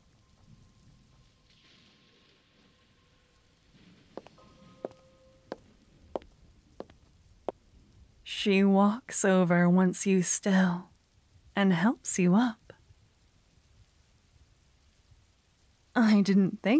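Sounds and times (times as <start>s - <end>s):
soft steady rain: 0.0s - 16.7s
speech: 8.4s - 10.9s, 11.6s - 12.6s, 16.0s - 16.7s.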